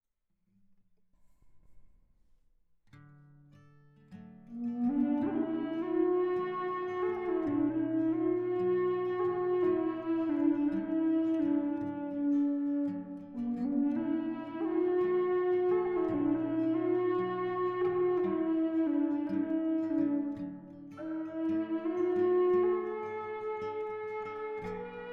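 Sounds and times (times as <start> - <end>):
guitar: 2.9 - 25.1
low B-flat minor Eastern red cedar flute: 4.4 - 25.1.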